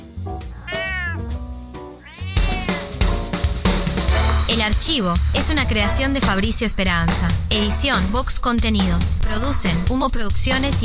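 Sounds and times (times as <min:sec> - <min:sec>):
cat meowing: 0:00.5 - 0:03.0
loud rhythmic music: 0:02.4 - 0:09.9
speech: 0:04.6 - 0:10.8.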